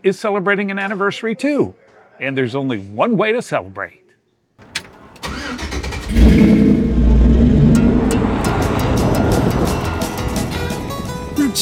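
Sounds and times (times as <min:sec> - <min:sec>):
speech: 0:00.0 - 0:04.0
1956 pickup truck engine starting on Route 66: 0:04.6 - 0:11.3.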